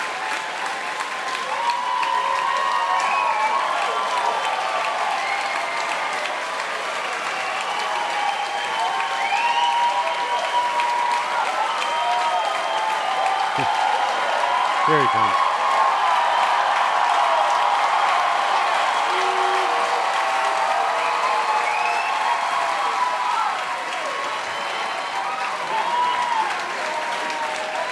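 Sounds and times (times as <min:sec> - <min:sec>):
concert crowd whoops and cheers: 0:00.0 - 0:27.9
large concert crowd clapping: 0:00.0 - 0:27.9
solo performer playing guitar: 0:19.1 - 0:20.0.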